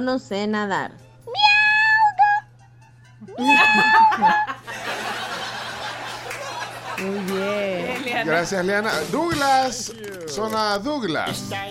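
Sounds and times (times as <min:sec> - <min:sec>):
speech: 0:00.0 - 0:01.0, 0:03.3 - 0:04.9, 0:07.0 - 0:11.7
person imitating high-pitched cat meows as a joke: 0:01.3 - 0:02.4, 0:03.3 - 0:04.4
laughter: 0:03.4 - 0:08.8.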